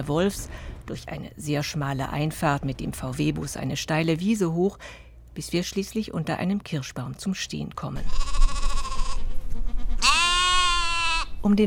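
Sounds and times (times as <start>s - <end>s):
speech: 0.0s - 8.4s, 11.4s - 11.6s
low hum: 0.0s - 11.6s
sheep and goats bleating in a farmyard around a parked VW bus: 8.0s - 9.3s, 10.0s - 11.4s.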